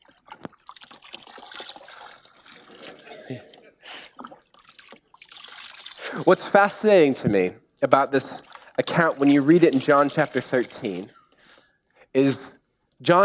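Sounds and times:
water trickling and splashing in a basin as feet are washed: 0:00.0 - 0:06.2, 0:07.8 - 0:11.1
speech: 0:03.3 - 0:03.5, 0:06.2 - 0:11.2, 0:12.2 - 0:13.2.

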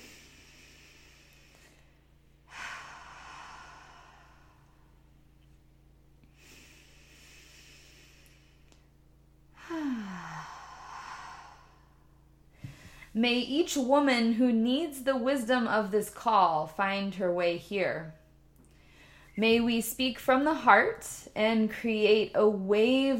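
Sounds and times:
person breathing deeply, inhaling through the nose and exhaling through the mouth: 0:00.0 - 0:05.1, 0:06.3 - 0:08.7, 0:09.5 - 0:13.2, 0:18.7 - 0:19.4
speech: 0:13.2 - 0:18.2, 0:19.4 - 0:23.1.

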